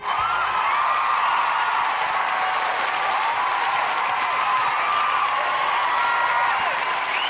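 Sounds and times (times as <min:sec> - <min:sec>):
audience applause at the close of a show: 0:00.0 - 0:07.2.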